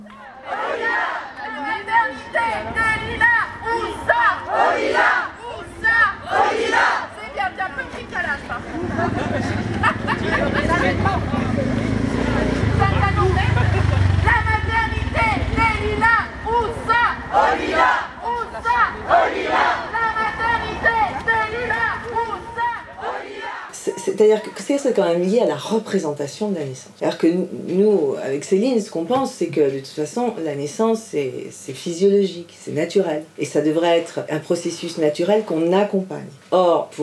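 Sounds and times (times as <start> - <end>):
large outdoor crowd at a protest rally to save a maternity hospital chanting and cheering: 0.0 - 8.4, 14.2 - 23.8
laughter: 8.0 - 14.4
speech: 24.2 - 37.0.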